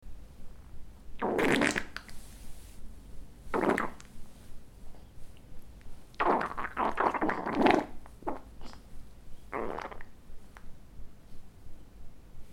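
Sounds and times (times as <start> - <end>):
wet fart: 1.2 - 2.2, 3.5 - 4.1, 6.2 - 8.8, 9.5 - 10.1.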